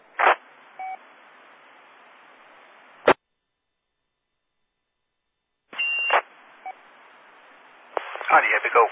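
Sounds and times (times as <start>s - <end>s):
radio hiss: 0.2s - 0.4s, 7.9s - 8.9s
short electronic telephone call beeps: 5.8s - 6.2s
speech: 8.3s - 8.9s.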